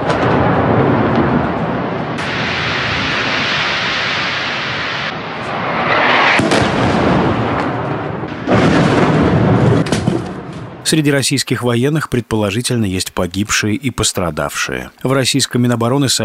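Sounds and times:
heavy explosions from a night cruise missile strike on a city: 0:00.0 - 0:11.0
speech: 0:10.9 - 0:16.2.

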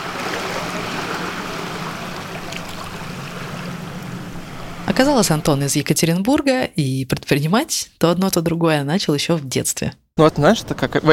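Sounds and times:
moving water along the bank of the Tagus river: 0:00.0 - 0:06.1
speech: 0:04.9 - 0:11.1.

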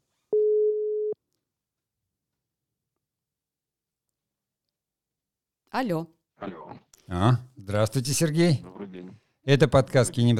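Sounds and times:
telephone ringing tone as a call goes through: 0:00.4 - 0:01.2
speech: 0:05.7 - 0:10.3.

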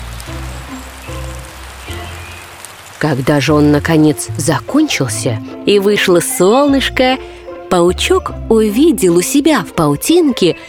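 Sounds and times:
heavy rain pouring down: 0:00.0 - 0:05.8
speech: 0:03.0 - 0:10.6.

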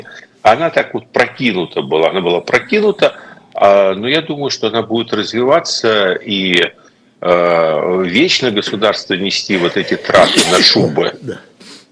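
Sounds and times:
speech: 0:00.0 - 0:11.5
person sneezing: 0:09.5 - 0:11.8.

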